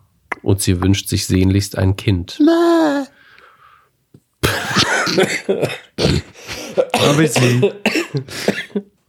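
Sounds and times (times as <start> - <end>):
speech: 0.5 - 3.1, 5.2 - 6.3, 7.0 - 8.6
raspy throaty breaths: 3.2 - 4.0, 6.2 - 6.9, 8.2 - 8.7
person coughing hard: 4.4 - 8.8.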